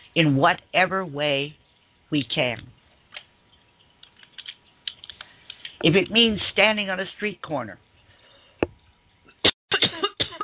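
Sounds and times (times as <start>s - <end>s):
speech: 0.2s - 2.8s, 5.8s - 7.8s
person coughing: 9.3s - 10.4s.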